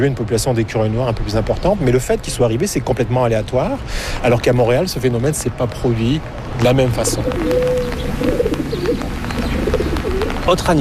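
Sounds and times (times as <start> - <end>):
speech: 0.0 - 8.4, 10.5 - 10.7
city pigeon cooing: 7.0 - 10.5.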